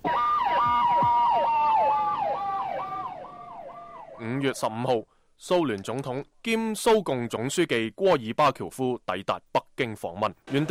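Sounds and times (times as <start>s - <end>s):
ambulance siren wailing around Tiananmen Square in Beijing: 0.0s - 4.6s
speech: 4.5s - 10.6s.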